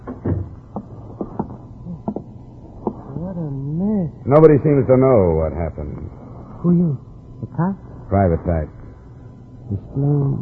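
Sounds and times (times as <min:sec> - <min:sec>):
door being shut: 0:00.0 - 0:01.5
speech: 0:03.4 - 0:08.8, 0:09.7 - 0:10.4.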